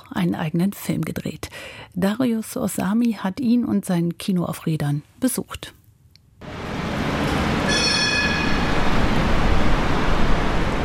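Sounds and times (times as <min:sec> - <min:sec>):
speech: 0:00.1 - 0:05.8
train rumbling past at Praterstern U-Bahn station in Vienna: 0:06.4 - 0:10.8
high metallic train wheel squeal: 0:07.7 - 0:08.9.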